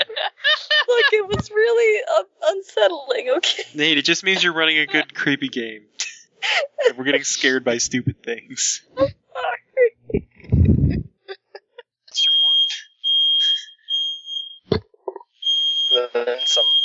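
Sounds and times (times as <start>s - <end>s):
laughter: 0.0s - 2.0s, 3.4s - 8.0s, 16.0s - 16.6s
speech: 2.8s - 9.5s, 16.0s - 16.8s
vocal noises: 7.8s - 8.3s, 8.9s - 13.7s, 14.7s - 16.7s
fire alarm beeping: 12.2s - 14.7s, 15.4s - 16.8s.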